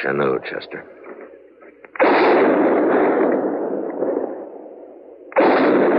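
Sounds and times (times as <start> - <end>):
gunshots: 1.9 - 5.9.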